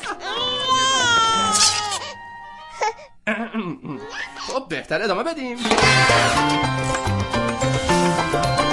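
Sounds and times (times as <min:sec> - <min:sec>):
baby wailing and whimpering: 0:00.0 - 0:03.2
speech: 0:03.2 - 0:08.6.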